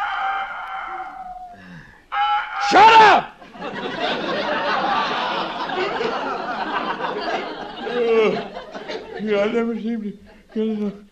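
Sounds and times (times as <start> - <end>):
rooster crowing: 0.0 - 2.7
speech: 2.7 - 4.5, 9.2 - 11.1
laughter: 3.4 - 11.1.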